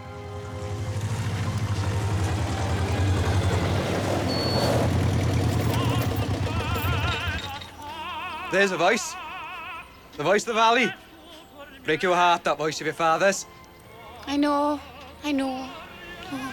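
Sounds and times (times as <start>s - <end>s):
dumper truck diesel engine chugging in a graveyard: 0.0s - 8.3s
faint birdsong: 0.9s - 15.7s
speech: 8.5s - 9.2s, 10.2s - 11.0s, 11.8s - 13.6s, 14.3s - 16.5s.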